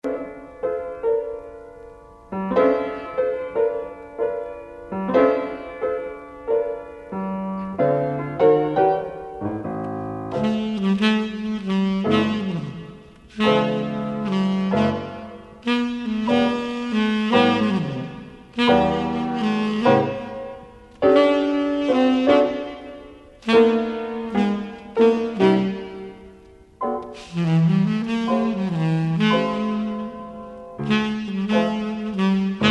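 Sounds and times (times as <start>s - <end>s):
piano: 0.0s - 32.6s
saxophone: 10.3s - 32.6s.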